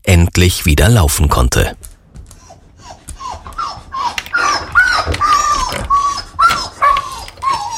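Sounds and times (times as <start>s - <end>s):
speech: 0.1s - 1.9s
female husky yipping and whining: 2.2s - 7.7s.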